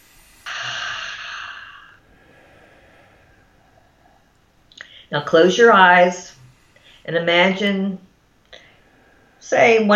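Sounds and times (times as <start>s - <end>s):
person breathing in through nose and out through mouth: 0.0s - 9.9s
speech: 5.1s - 6.4s, 7.1s - 8.0s, 9.4s - 9.9s.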